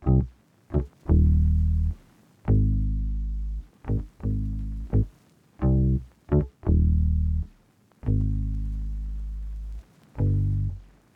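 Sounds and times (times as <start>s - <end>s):
bass line in D sharp major: 0.0s - 7.5s, 8.1s - 10.8s.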